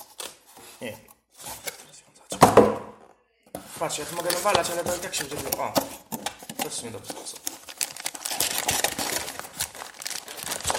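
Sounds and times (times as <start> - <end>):
speech: 0.8 - 1.1, 3.8 - 7.6
paper packaging crumpled while unwrapping a power supply: 3.8 - 5.7, 6.6 - 10.7.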